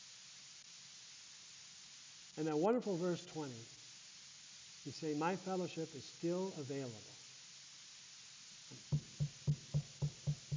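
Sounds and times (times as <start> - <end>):
speech: 2.4 - 3.8, 4.8 - 7.2, 8.7 - 9.0
knocking on a wooden door: 8.7 - 10.5.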